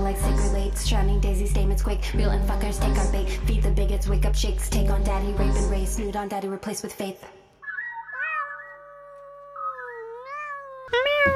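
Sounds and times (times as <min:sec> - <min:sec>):
speech: 0:00.1 - 0:07.4
cat meowing in a wavering yowl: 0:07.6 - 0:11.3.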